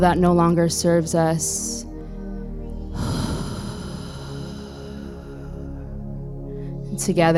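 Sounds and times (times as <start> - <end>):
speech: 0.0 - 1.9, 7.0 - 7.3
steady tonal drone: 0.0 - 7.3
deep inhale and audible exhale through the mouth: 2.0 - 6.9.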